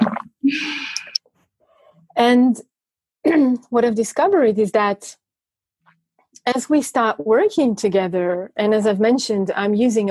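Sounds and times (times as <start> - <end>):
person sipping water: 0.0 - 1.2
speech: 2.2 - 2.7, 3.3 - 5.2, 6.4 - 10.0.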